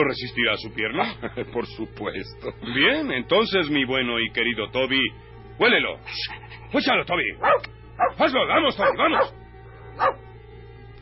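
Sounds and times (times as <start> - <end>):
speech: 0.0 - 9.4
dog bark: 7.4 - 8.2, 8.8 - 9.4, 10.0 - 10.2.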